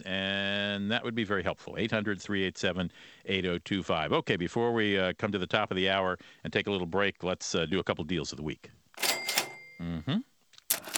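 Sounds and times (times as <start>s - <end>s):
speech: 0.0s - 8.8s, 9.8s - 10.9s
cash register sound effect with clatter, chime and drawer opening: 9.0s - 9.8s, 10.7s - 10.9s.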